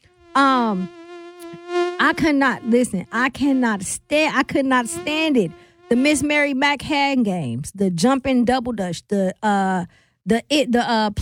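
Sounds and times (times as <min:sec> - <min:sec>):
person imitating a mosquito's whine: 0:00.0 - 0:06.5
speech: 0:00.4 - 0:01.0, 0:02.0 - 0:11.2.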